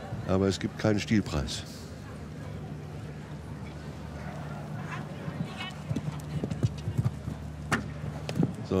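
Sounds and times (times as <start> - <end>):
speech: 0.3 - 1.8
horse hooves clip-clopping during a show jumping round: 4.2 - 8.6.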